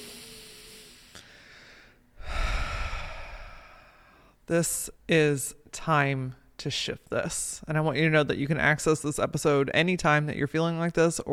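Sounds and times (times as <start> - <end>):
deep breath taken as a calming exercise: 0.0 - 4.4
speech: 4.5 - 11.3.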